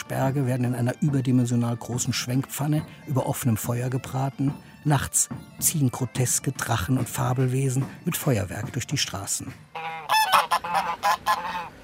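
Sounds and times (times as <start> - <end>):
speech: 0.1 - 10.0
geese honking in a rural yard behind small fishermen's houses: 9.7 - 11.8.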